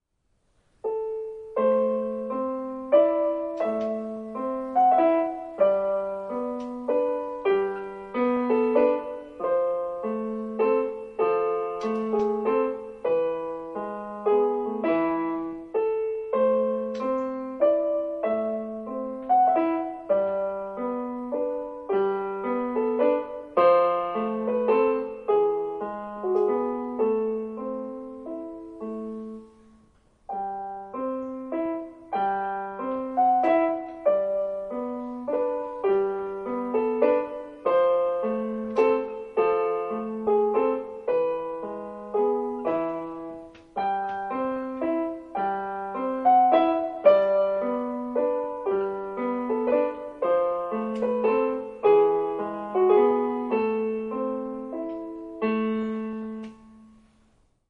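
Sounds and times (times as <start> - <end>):
piano playing an Irish folk song: 0.5 - 57.6.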